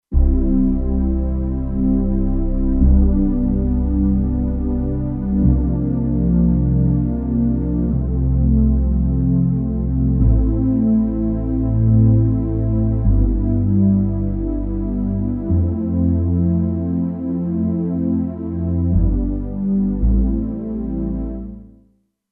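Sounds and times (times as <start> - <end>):
synthesizer music: 0.1 - 21.7.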